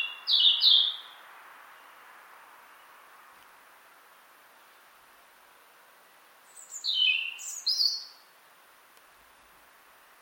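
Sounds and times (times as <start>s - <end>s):
European robin singing: 0.0s - 2.1s, 6.4s - 8.3s.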